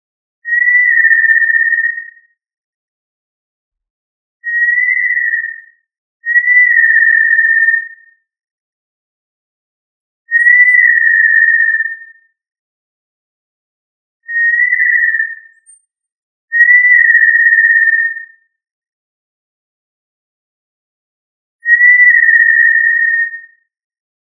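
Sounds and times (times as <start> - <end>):
tinamou whistling long steady pure notes: 0.4 - 2.2, 4.4 - 8.0, 10.3 - 12.1, 14.3 - 15.8, 16.5 - 18.2, 21.6 - 23.6.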